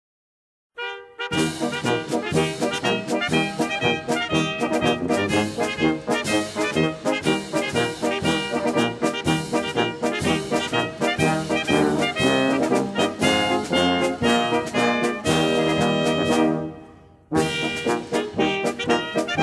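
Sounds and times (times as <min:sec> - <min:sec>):
bugle: 0:00.8 - 0:19.4
drum: 0:01.6 - 0:16.5.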